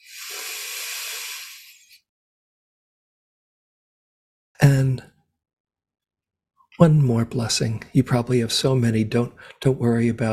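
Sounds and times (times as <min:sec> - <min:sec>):
slow deep breath: 0:00.0 - 0:02.0
speech: 0:04.6 - 0:05.1, 0:06.8 - 0:10.3.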